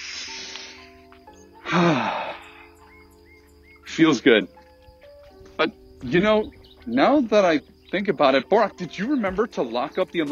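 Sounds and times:
rushing sighing exhale: 0.0s - 1.0s, 1.6s - 2.8s
deep cleansing breath by people winded from walking up and down hills: 0.0s - 3.0s
speech: 4.0s - 4.6s, 5.6s - 10.3s.

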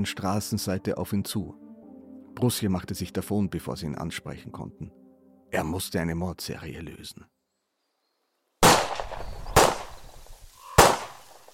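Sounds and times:
speech: 0.0s - 1.6s, 2.4s - 7.4s
loud sharp pistol shots echoing in a forest: 8.6s - 11.5s.

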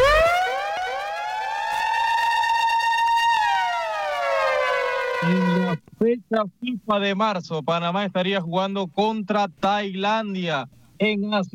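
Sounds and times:
breaking-news siren sound effect: 0.0s - 5.8s
speech: 5.2s - 11.5s.

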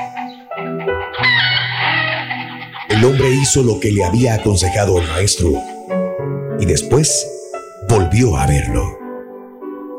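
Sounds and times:
hens clucking: 0.0s - 5.5s
rooster crowing: 1.0s - 3.5s
speech: 3.0s - 5.8s, 6.6s - 9.0s.

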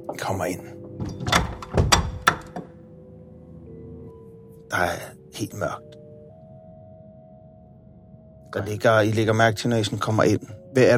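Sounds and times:
speech: 0.1s - 1.1s, 4.7s - 5.9s, 8.5s - 10.9s
knocking on an unlocked door: 1.0s - 2.7s.

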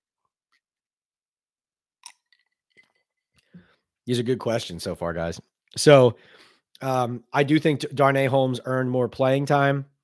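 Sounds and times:
faint mouth clicks: 2.0s - 2.9s
speech: 4.1s - 9.9s.

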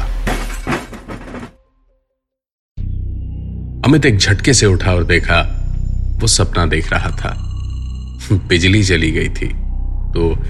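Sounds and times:
antique candlestick telephone falling and shattering: 0.0s - 1.6s
speech: 3.9s - 5.6s, 6.2s - 7.5s, 8.3s - 10.4s.

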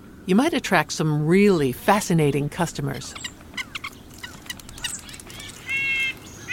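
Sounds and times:
constant low outdoor rumble: 0.0s - 6.5s
winter birds chirping: 0.0s - 6.5s
speech: 0.2s - 3.4s
bird holding a steady whistled tone: 3.1s - 6.5s.

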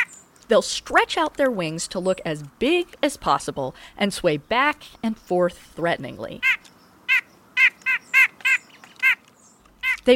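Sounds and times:
speech: 0.5s - 6.7s
white-breasted nuthatch nasal honking calls: 6.4s - 10.1s.

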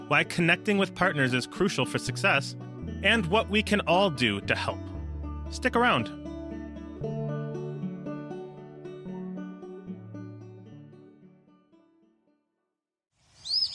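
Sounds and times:
mellow instrumental music: 0.0s - 12.1s
speech: 0.1s - 4.9s, 5.5s - 6.2s
bird call: 13.4s - 13.7s.

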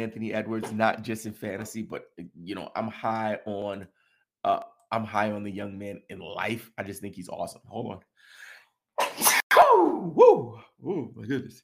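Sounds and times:
speech: 0.0s - 8.4s, 9.0s - 11.6s
loud two-part sneeze: 9.0s - 10.0s.

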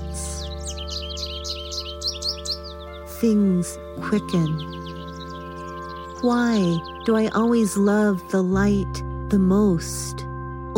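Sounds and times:
birds twittering: 0.0s - 9.9s
sustained musical tones: 0.0s - 10.7s
speech: 3.2s - 4.8s, 6.2s - 10.0s.

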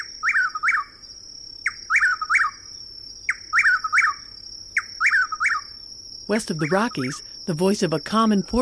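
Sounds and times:
Chuck-will's-widow loud whistled calls in a southeastern woodland: 0.0s - 1.0s, 1.7s - 2.6s, 3.3s - 4.2s, 4.8s - 5.8s
speech: 6.3s - 8.6s.

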